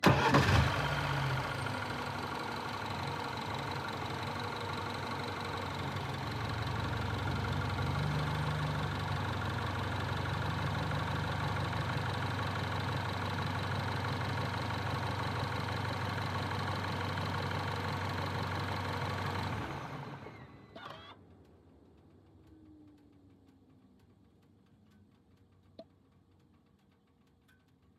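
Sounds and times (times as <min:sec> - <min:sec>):
BMW 114i E87 engine starting, idling and stopping: 0:00.0 - 0:21.4.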